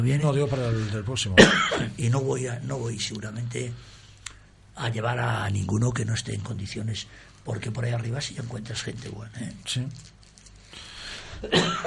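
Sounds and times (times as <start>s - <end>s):
speech: 0.0s - 4.0s, 4.8s - 10.2s, 11.4s - 11.8s
man coughing: 1.4s - 2.0s, 11.4s - 11.8s.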